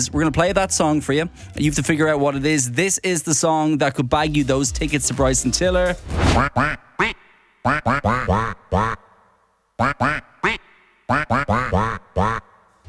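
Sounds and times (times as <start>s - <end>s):
speech: 0.0s - 9.0s, 9.8s - 12.5s
person imitating duck quacks into a microphone: 6.4s - 9.2s, 9.8s - 12.6s.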